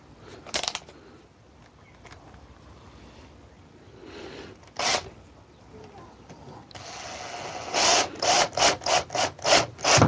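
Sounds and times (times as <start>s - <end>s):
drill with screw bit driving a screw: 4.8s - 5.1s, 6.8s - 10.0s.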